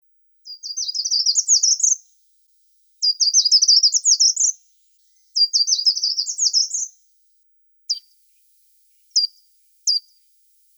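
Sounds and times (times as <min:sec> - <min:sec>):
Certhia brachydactyla calling: 0:00.5 - 0:02.1, 0:03.0 - 0:07.0, 0:07.9 - 0:10.1.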